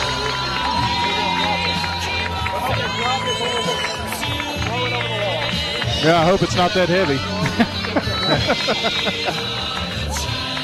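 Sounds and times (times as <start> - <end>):
scattered whoops from the crowd: 0.0 - 4.6
large crowd cheering at a championship trophy presentation in a big open venue: 0.0 - 10.6
speech: 6.0 - 9.9
laughter: 6.1 - 10.2.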